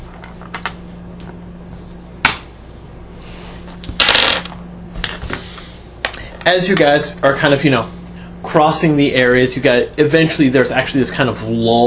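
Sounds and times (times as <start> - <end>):
dice clattering across a hard tabletop: 3.9 - 5.2
speech: 6.4 - 11.8.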